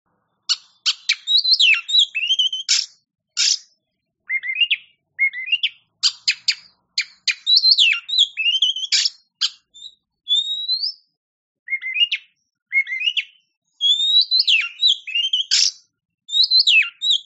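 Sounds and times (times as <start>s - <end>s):
champion-class Oriental magpie-robin singing with ticking notes and gliding whistles: 0.4s - 17.2s.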